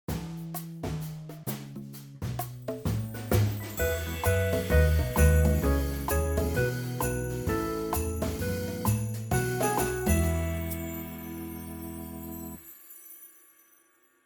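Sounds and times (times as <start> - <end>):
Christmas style music: 2.9 - 14.2.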